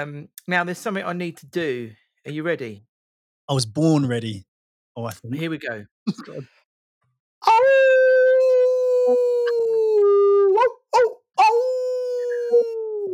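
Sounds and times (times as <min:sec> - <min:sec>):
speech: 0:00.0 - 0:02.9, 0:03.5 - 0:06.6, 0:07.4 - 0:07.9, 0:09.1 - 0:09.3
wolf howling: 0:07.4 - 0:13.1.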